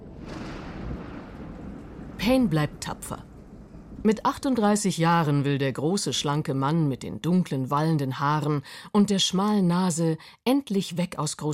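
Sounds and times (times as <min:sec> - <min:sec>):
broad hissing wash: 0:00.0 - 0:04.3
thunder rumbling over the sea: 0:00.0 - 0:06.6
speech: 0:02.2 - 0:03.3, 0:04.0 - 0:11.5.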